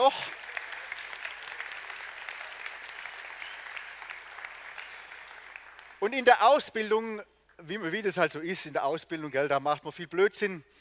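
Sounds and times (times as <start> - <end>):
speech: 0.0 - 0.4, 6.0 - 10.7
audience applause for craftspeople: 0.0 - 6.0.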